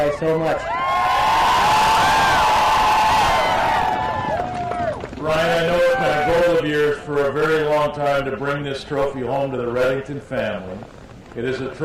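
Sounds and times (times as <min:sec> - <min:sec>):
speech: 0:00.1 - 0:00.8, 0:05.2 - 0:11.8
large crowd of fans at a sled dog race cheering and whooping: 0:00.5 - 0:06.6
overlapping shouts and rising calls of fans: 0:00.6 - 0:06.6.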